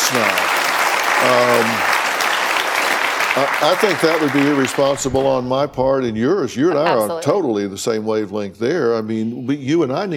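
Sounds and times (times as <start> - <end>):
audience applause: 0.0 - 5.6
speech: 0.1 - 0.4, 1.2 - 2.0, 3.4 - 10.1.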